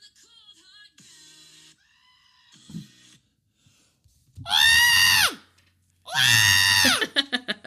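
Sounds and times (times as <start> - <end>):
person imitating a screaming goat: 4.5 - 5.4, 6.1 - 7.0.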